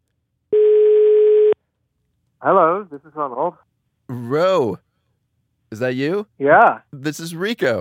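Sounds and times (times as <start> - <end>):
European telephone ringing tone: 0.5 - 1.6
speech: 2.4 - 4.8, 5.7 - 7.7.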